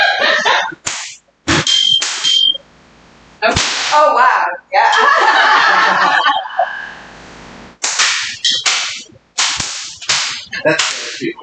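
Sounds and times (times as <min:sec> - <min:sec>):
laughter: 0:00.0 - 0:00.8, 0:04.8 - 0:07.0, 0:10.4 - 0:11.4
bullwhip cracking: 0:00.8 - 0:02.4, 0:03.6 - 0:04.0, 0:07.8 - 0:11.4
whip swish: 0:00.8 - 0:02.4, 0:07.8 - 0:11.4
speech: 0:10.6 - 0:11.4.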